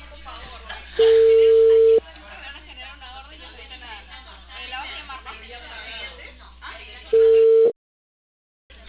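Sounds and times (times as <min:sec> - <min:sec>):
people talking: 0:00.0 - 0:07.7
telephone ringback tone as a call is placed: 0:01.0 - 0:02.0, 0:07.2 - 0:07.8.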